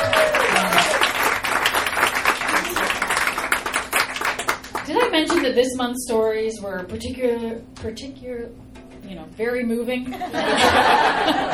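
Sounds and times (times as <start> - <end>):
faint voices and cheers: 0.0 - 1.1
laughter: 0.0 - 3.4, 10.1 - 11.5
audience round of applause: 0.0 - 5.5
speech: 5.6 - 11.5.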